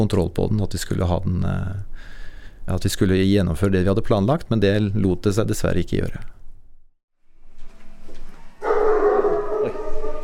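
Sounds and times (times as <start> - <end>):
speech: 0.0 - 6.4
German shepherd dogs barking at a dog boarding kennel: 8.6 - 10.2.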